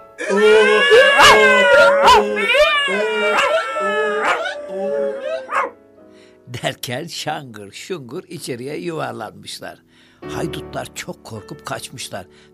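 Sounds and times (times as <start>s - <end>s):
speech: 0.2s - 3.6s, 6.6s - 12.5s
rooster crowing: 0.2s - 4.6s
donkey braying: 0.2s - 5.7s
cat yowling: 0.2s - 5.8s
dog barking and howling: 0.2s - 5.8s.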